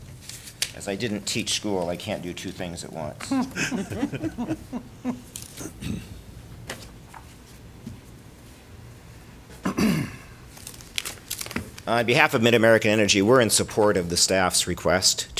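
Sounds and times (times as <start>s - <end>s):
paper sign-in sheet rustling and crinkling: 0.0s - 4.3s, 5.2s - 5.6s, 6.6s - 8.0s, 10.5s - 11.9s
speech: 0.8s - 6.2s, 11.9s - 15.3s
laughter: 3.1s - 5.8s.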